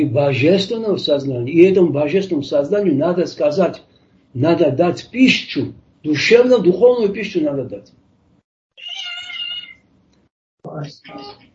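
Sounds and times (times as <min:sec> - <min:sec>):
speech: 0:00.0 - 0:08.0, 0:10.7 - 0:11.5
cat meowing: 0:08.8 - 0:09.8.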